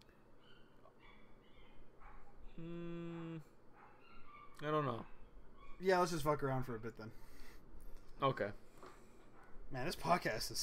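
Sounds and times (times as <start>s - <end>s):
dogs barking and howling: 0.0s - 2.6s, 3.7s - 6.0s
speech: 2.6s - 2.9s, 4.6s - 5.2s, 5.8s - 7.3s, 8.2s - 8.6s, 9.7s - 10.6s.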